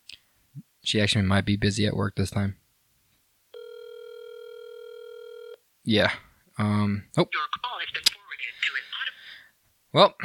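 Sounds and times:
speech: 0:00.9 - 0:02.6, 0:05.8 - 0:07.8, 0:09.9 - 0:10.2
electronic phone ringing tone: 0:03.5 - 0:05.6.

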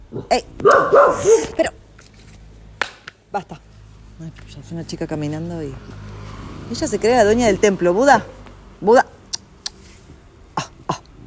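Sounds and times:
speech: 0:00.1 - 0:01.8, 0:03.3 - 0:03.6, 0:04.2 - 0:06.1, 0:06.7 - 0:09.1
dog barking: 0:00.6 - 0:01.6.

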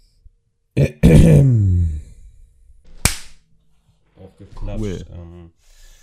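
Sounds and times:
speech: 0:00.8 - 0:01.6
loud sharp clap or slap: 0:03.0 - 0:03.4.

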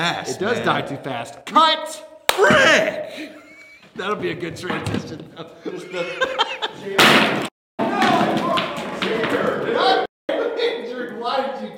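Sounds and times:
speech: 0:00.0 - 0:03.4, 0:04.0 - 0:07.5
several people laughing: 0:03.0 - 0:04.2, 0:05.4 - 0:07.0
chair breaking under a person's weight with a loud cracking crash: 0:07.0 - 0:09.7.

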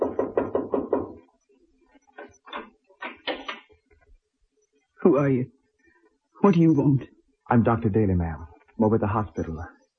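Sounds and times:
doctor knocking on the door of a sick man's house: 0:00.0 - 0:01.2
speech: 0:05.0 - 0:05.6, 0:06.4 - 0:09.8.

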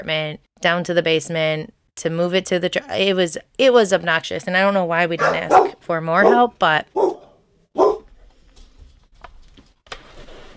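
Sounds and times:
speech: 0:00.0 - 0:07.1
loud sharp dog barks: 0:05.2 - 0:08.1.

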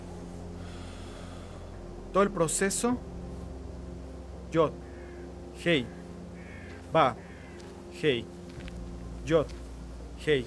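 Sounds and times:
slow deliberate breath in and out: 0:00.6 - 0:01.8
speech: 0:02.1 - 0:03.1, 0:04.5 - 0:04.8, 0:05.6 - 0:06.0, 0:06.9 - 0:07.2, 0:08.0 - 0:08.4, 0:09.2 - 0:09.6, 0:10.2 - 0:10.4.

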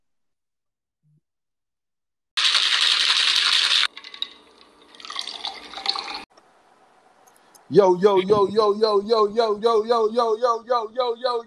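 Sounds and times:
liquid pouring into a cup: 0:02.4 - 0:06.3
speech: 0:07.7 - 0:11.4.

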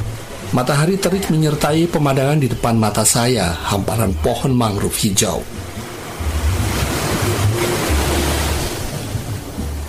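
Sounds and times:
ocean surf breaking on the shore of a beach facing the Bali Strait: 0:00.0 - 0:09.8
speech: 0:00.5 - 0:05.7
low wind rumble on the microphone: 0:05.4 - 0:09.8.

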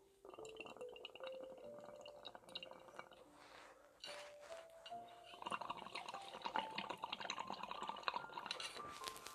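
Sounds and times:
mint water trickling and gurgling into a glass: 0:00.2 - 0:09.2.

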